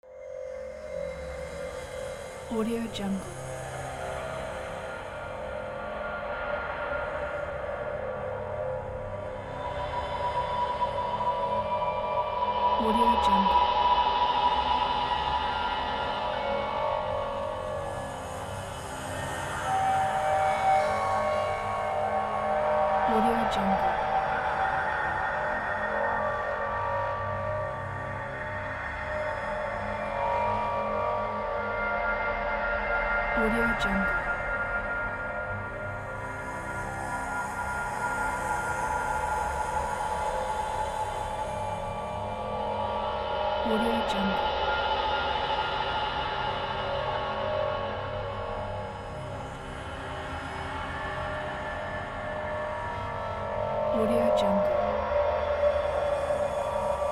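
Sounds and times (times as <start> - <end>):
dark tunnel ambience: 0.2 - 57.1.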